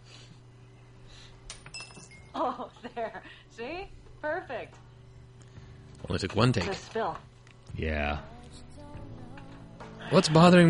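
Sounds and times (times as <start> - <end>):
quarter coin bouncing and rattling into a glass: 1.5 - 2.3
speech: 2.4 - 4.8, 6.1 - 8.6, 10.1 - 10.6.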